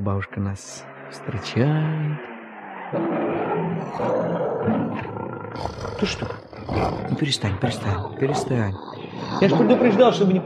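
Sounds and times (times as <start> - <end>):
speech: 0.0 - 2.3, 2.9 - 10.4
lion roaring with a deep rough bellow: 2.8 - 10.4.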